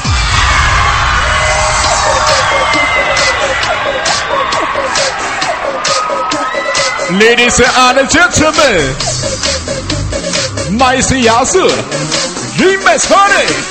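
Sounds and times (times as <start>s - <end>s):
large crowd screaming and cheering: 0.0s - 12.6s
speech: 7.1s - 9.2s, 10.8s - 13.6s.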